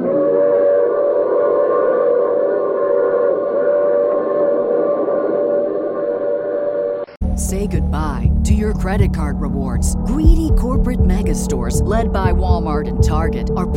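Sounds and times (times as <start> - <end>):
train whistle blaring multi-tone chord: 0.0 - 7.1
speech: 7.6 - 13.7.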